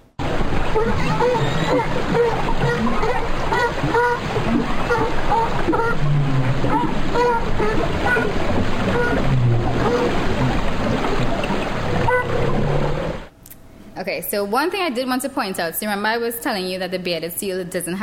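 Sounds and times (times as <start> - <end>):
crowd of California sea lions barking: 0.2 - 13.3
speech: 0.8 - 11.3, 14.0 - 18.0.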